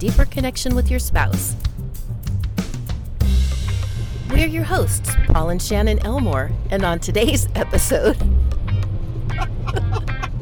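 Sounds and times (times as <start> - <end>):
speech: 0.0 - 1.7, 4.3 - 8.5
truck engine revving in traffic: 0.0 - 10.4.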